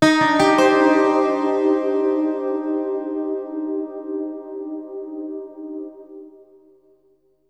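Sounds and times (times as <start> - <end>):
ambient electric guitar: 0.0 - 6.3.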